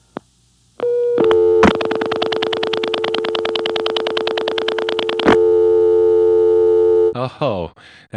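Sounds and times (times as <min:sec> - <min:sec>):
pulsing telephone tone bursts: 0:00.8 - 0:07.1
telephone no-test clicks recorded over long distance: 0:01.2 - 0:05.4
speech: 0:07.4 - 0:08.1.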